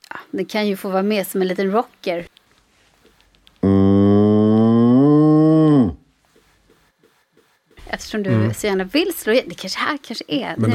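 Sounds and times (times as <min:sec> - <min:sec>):
speech: 0:00.3 - 0:02.4, 0:08.1 - 0:10.7
cow mooing: 0:03.6 - 0:06.0.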